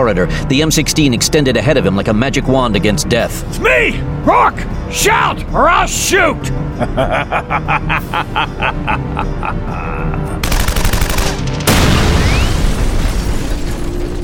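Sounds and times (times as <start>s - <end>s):
speech: 0.0s - 10.2s
laughter: 6.7s - 10.4s
explosion blowing out a wall in a corridor: 11.7s - 14.2s.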